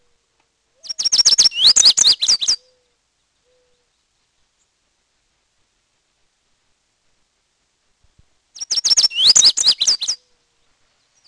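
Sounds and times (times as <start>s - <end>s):
bird song of high sharp slurred whistles: 0.8s - 2.8s, 8.6s - 10.3s.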